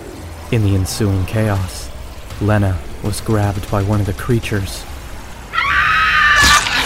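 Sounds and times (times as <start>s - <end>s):
speech: 0.5s - 4.9s
woman's shrill scream: 5.5s - 6.8s.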